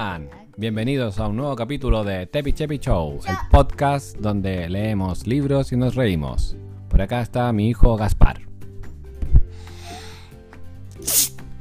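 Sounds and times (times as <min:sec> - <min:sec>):
speech: 0:00.0 - 0:08.5, 0:11.0 - 0:11.3
child sneezing: 0:11.0 - 0:11.4.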